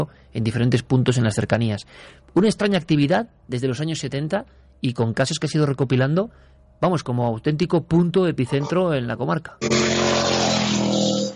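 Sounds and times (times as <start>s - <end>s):
speech: 0.0s - 11.2s
motorcycle engine roaring while passing by: 9.6s - 11.3s.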